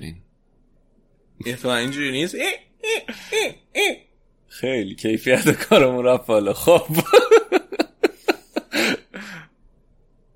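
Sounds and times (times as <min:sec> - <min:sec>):
speech: 0:01.4 - 0:07.5
person imitating a monkey call: 0:02.4 - 0:04.1
laughter: 0:06.6 - 0:09.0.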